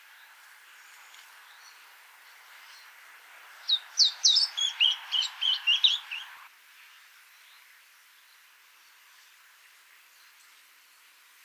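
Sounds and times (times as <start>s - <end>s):
willow warbler singing in Oberammergau: 0.0s - 6.5s.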